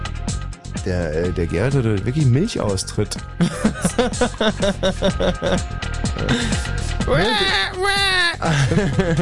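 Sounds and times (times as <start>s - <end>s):
speech: 0.8s - 9.2s
laughter: 3.4s - 5.6s, 8.4s - 9.2s
person's voice mimicking a baby's crying: 7.1s - 8.5s.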